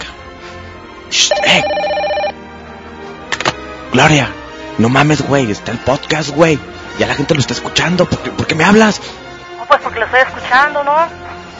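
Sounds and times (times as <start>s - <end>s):
speech: 1.1s - 2.0s, 3.9s - 11.5s
telephone ringing with an incoming call: 1.3s - 2.4s.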